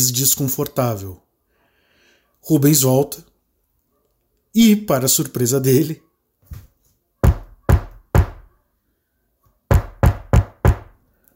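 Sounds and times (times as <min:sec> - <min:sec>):
speech: 0:00.0 - 0:01.3, 0:02.4 - 0:03.3, 0:04.5 - 0:06.1
knocking on a door at night: 0:07.2 - 0:08.5, 0:09.7 - 0:11.0.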